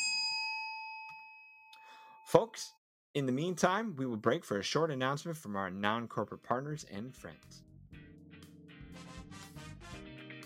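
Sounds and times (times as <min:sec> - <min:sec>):
small bell ringing: 0:00.0 - 0:01.7
speech: 0:02.3 - 0:07.7.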